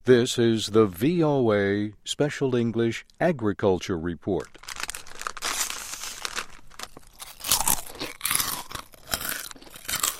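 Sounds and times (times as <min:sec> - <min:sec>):
speech: 0:00.0 - 0:04.7
corn chips being chewed: 0:04.4 - 0:10.1.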